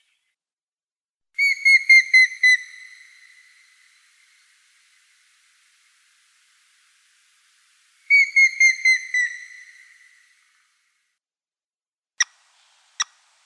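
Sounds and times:
Grey-headed woodpecker Picus canus giving whistled calls in Russia: 0:01.4 - 0:03.6, 0:08.1 - 0:10.2.

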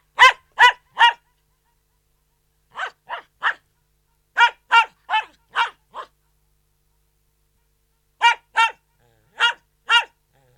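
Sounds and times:
poodle barking indoors: 0:00.2 - 0:01.4, 0:02.7 - 0:03.6, 0:04.4 - 0:06.2, 0:08.2 - 0:10.2.

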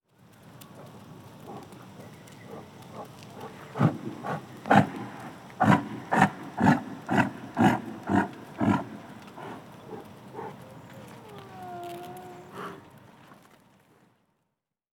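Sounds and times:
yak grunting in short rough pulses: 0:02.5 - 0:12.9.

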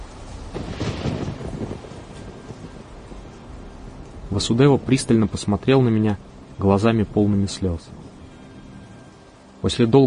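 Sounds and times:
deep rolling rumble of thunder: 0:00.0 - 0:07.2
wind noise: 0:00.0 - 0:09.6
steady heavy rain: 0:00.0 - 0:10.0
speech: 0:04.4 - 0:08.0, 0:09.6 - 0:10.0.

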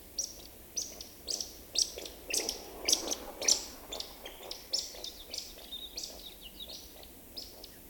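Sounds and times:
woodcock calls of sharp high chirps and squeaks: 0:00.2 - 0:07.8.

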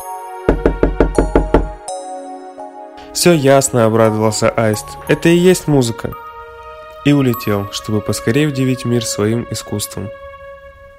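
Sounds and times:
knocking on a wooden door: 0:00.5 - 0:01.8
speech: 0:03.2 - 0:06.2, 0:07.0 - 0:10.2.

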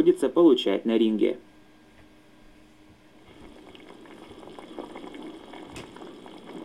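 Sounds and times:
speech: 0:00.0 - 0:01.5
chanko-nabe stew boiling in a pot: 0:03.1 - 0:06.6.

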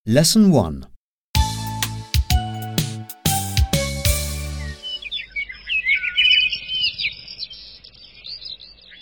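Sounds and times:
speech: 0:00.1 - 0:00.9
bright run of musical notes: 0:01.4 - 0:05.1
birdsong in the woods at sunrise: 0:03.8 - 0:09.0.

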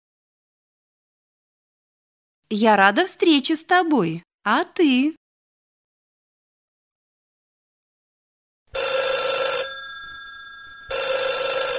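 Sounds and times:
speech: 0:02.5 - 0:05.2
telephone ringing with bright electronic bell tone: 0:08.7 - 0:11.7.

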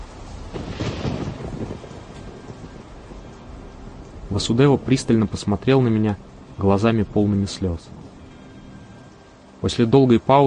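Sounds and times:
low rolling thunder: 0:00.0 - 0:09.5
hurricane-force gusts of wind lashing trees: 0:00.0 - 0:10.4
steady heavy hissing rain: 0:00.0 - 0:10.4
speech: 0:04.4 - 0:08.0, 0:09.6 - 0:10.4.

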